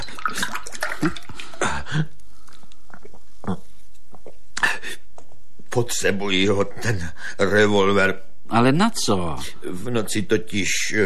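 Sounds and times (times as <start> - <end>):
water splashing and pouring: 0.0 - 1.7
speech: 1.0 - 1.2, 5.8 - 11.0.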